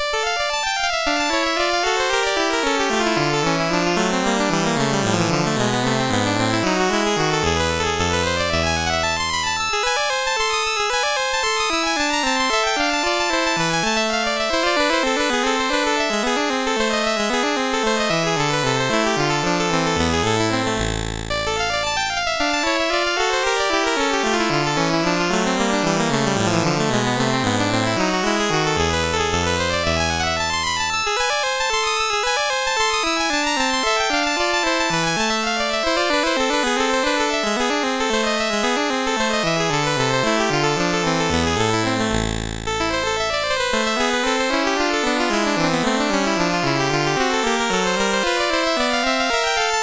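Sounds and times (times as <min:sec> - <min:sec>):
sonata movement on a MOS6581R2 sound chip: 0:00.0 - 0:49.8.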